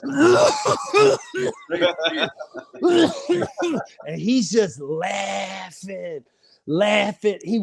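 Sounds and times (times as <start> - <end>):
person imitating a harsh coughing fit: 0.0 - 4.2
laughter: 0.0 - 5.9
speech: 0.0 - 7.6.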